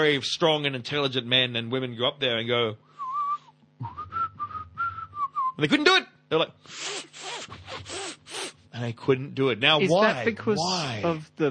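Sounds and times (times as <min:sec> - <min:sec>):
speech: 0:00.0 - 0:02.9, 0:05.6 - 0:07.1, 0:08.8 - 0:11.4
person whistling: 0:03.0 - 0:05.6.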